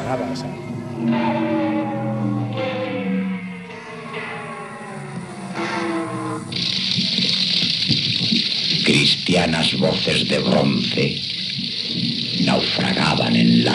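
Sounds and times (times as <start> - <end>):
resonant sliding tonal hums: 0.0 - 13.7
speech: 0.1 - 1.7, 9.1 - 11.4, 12.4 - 13.7
water gurgling and flowing: 5.4 - 13.7.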